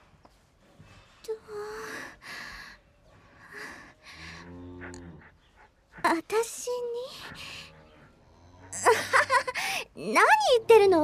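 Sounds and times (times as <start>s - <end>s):
breeding cattle lowing: 4.2s - 5.3s, 7.3s - 9.2s
speech: 10.0s - 11.0s.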